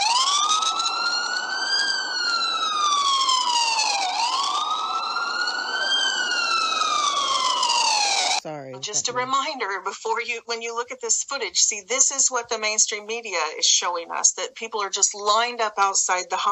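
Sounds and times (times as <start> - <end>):
ambulance siren wailing: 0.0 - 8.4
speech: 8.4 - 16.5.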